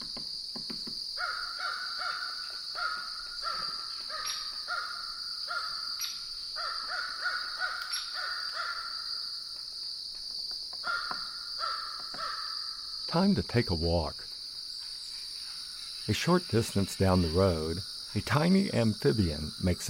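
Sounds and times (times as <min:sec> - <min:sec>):
high-pitched drone of insects or crickets: 0:00.0 - 0:19.8
crow cawing overhead: 0:01.2 - 0:09.2, 0:10.7 - 0:13.0
speech: 0:13.2 - 0:14.3, 0:16.1 - 0:19.8.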